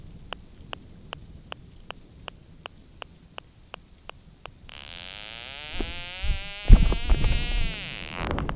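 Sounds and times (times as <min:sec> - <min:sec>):
Blainville's beaked whale buzz: 0:04.7 - 0:08.4.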